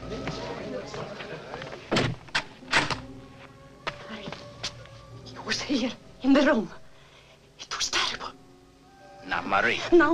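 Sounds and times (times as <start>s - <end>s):
door being shut and locked: 1.9s - 3.1s
speech: 5.7s - 6.8s, 9.5s - 10.1s.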